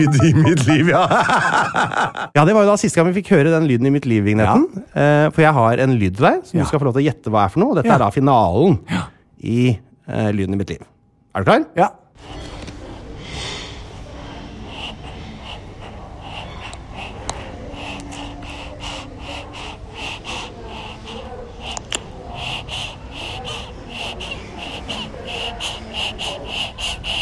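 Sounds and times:
laughter: 0.0 - 2.3
speech: 0.0 - 12.4
newborn baby breathing five minutes after birth: 12.3 - 27.2.

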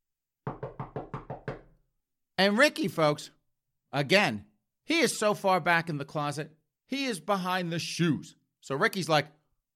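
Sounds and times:
sharp knocks on a wooden door: 0.5 - 1.8
speech: 2.4 - 9.4.

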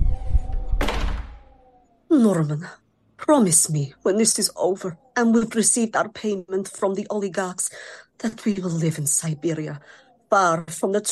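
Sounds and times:
door swinging shut with a solid thunk: 0.4 - 1.6
speech: 2.1 - 11.1.

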